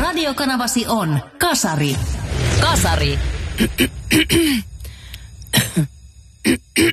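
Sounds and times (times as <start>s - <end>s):
speech: 0.2s - 4.7s, 5.7s - 6.9s
throat clearing: 3.6s - 4.7s, 5.5s - 6.9s
throaty coughs: 3.6s - 4.7s, 5.5s - 6.9s.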